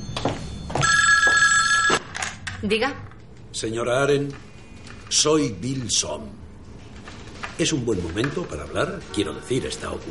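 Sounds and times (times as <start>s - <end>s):
telephone ringing at home with electronic trill: 0.0s - 2.2s
speech: 2.6s - 4.5s, 5.1s - 6.4s, 7.6s - 10.0s.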